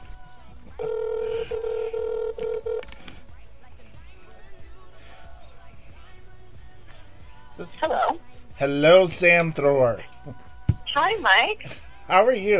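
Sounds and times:
outgoing phone call ringing tone: 0.8 - 2.9
speech: 7.7 - 10.4, 11.0 - 12.5.

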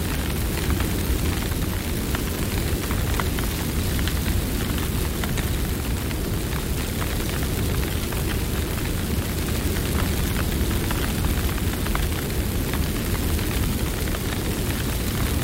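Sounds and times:
wildfire crackles and pops: 0.0 - 15.4
wildfire roaring with a deep rumble: 0.0 - 15.4.

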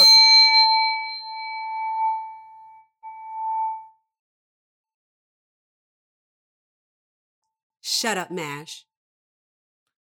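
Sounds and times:
metal singing bowl struck with a butter knife: 0.0 - 3.9
speech: 8.0 - 8.9.

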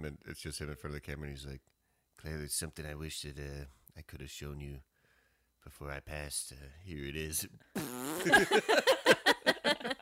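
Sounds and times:
speech: 0.0 - 4.9, 5.6 - 10.0
voice making a mouth imitation of a fart: 7.8 - 8.4
laughter: 8.2 - 10.0.

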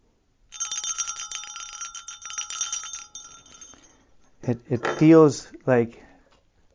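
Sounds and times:
bright bell ringing rapidly: 0.5 - 4.1
speech: 4.5 - 6.0.

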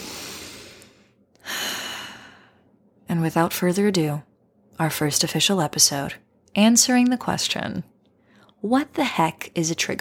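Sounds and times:
deep breath in and out: 0.0 - 2.8
speech: 3.2 - 7.9, 8.6 - 10.0.

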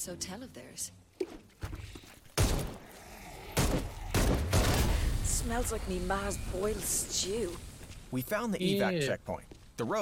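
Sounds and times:
speech: 0.0 - 1.4, 5.3 - 10.0
gunfire from weapons in a video game: 3.6 - 5.1.

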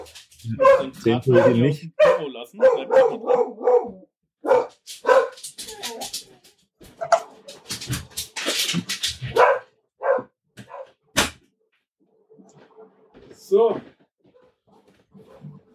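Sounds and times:
dog barking excitedly at a doorbell: 0.0 - 6.4, 9.2 - 11.0
speech: 0.1 - 4.6.

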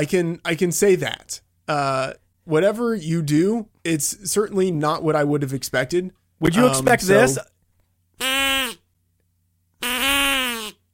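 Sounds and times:
speech: 0.0 - 7.5
duck call being blown: 8.2 - 8.8, 9.8 - 10.8.

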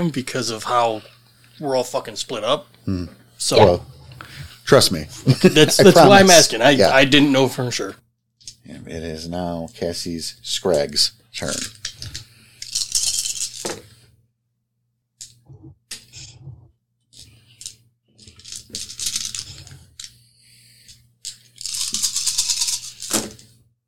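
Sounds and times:
speech: 0.0 - 8.0, 8.7 - 12.2
laughter: 5.1 - 6.5
big handful of dice rolled across a surface in a tabletop game: 11.6 - 13.8, 17.6 - 20.2, 21.3 - 23.3.

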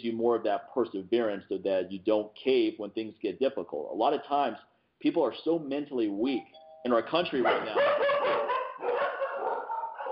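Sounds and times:
speech: 0.0 - 8.5
dog barking in long yowling bursts: 7.4 - 10.1.

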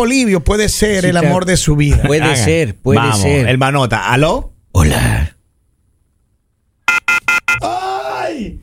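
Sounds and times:
speech: 0.0 - 5.4
short beeps of a phone's disconnect tone: 6.9 - 7.6.

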